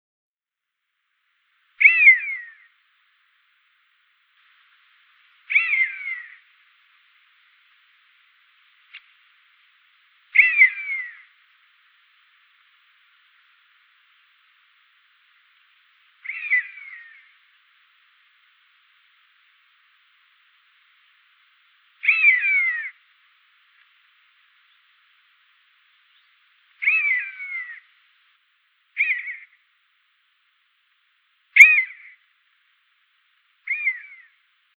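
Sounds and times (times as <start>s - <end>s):
common buzzard calling in flight: 5.5s - 6.4s, 10.4s - 11.3s, 16.2s - 17.4s, 22.0s - 23.0s, 26.8s - 27.8s, 29.0s - 29.6s, 31.6s - 32.2s.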